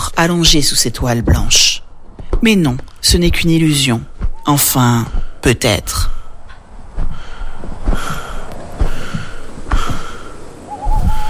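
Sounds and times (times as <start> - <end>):
speech: 0.2 - 1.8, 2.4 - 6.2
raspy wheezy breathing: 6.0 - 11.2.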